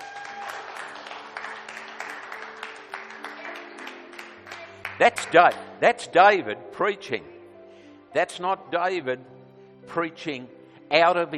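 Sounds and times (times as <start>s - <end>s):
audience clapping in praise during a sermon: 0.0s - 5.8s
speech: 5.0s - 7.3s, 8.1s - 11.3s.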